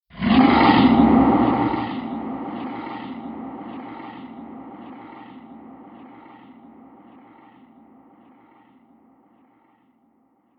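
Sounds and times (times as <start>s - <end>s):
horror monster roar: 0.1s - 6.6s.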